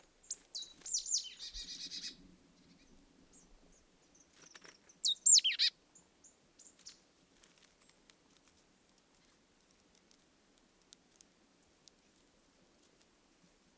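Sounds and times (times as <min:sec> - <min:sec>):
marsh tit Poecile palustris calls with buzzy scolding chatter: 0:00.2 - 0:05.7.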